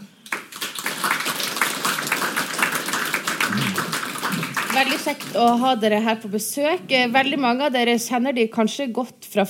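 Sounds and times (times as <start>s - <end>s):
audience applause: 0.3s - 5.4s
speech: 4.8s - 9.4s.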